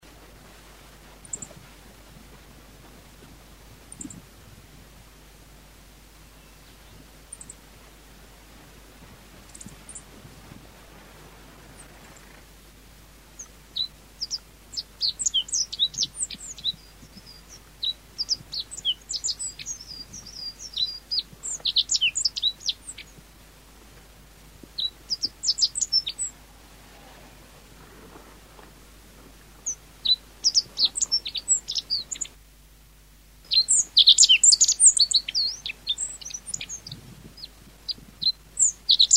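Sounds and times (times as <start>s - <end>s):
Ecioides birdsong: 1.2s - 1.7s, 3.9s - 4.3s, 5.8s - 8.4s, 9.4s - 12.6s, 13.2s - 23.4s, 24.6s - 32.4s, 33.5s - 39.1s.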